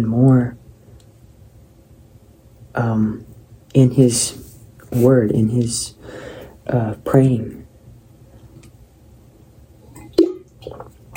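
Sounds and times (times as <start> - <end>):
speech: 0.0 - 0.6, 2.8 - 7.6
water sloshing in a water bottle: 9.9 - 11.1.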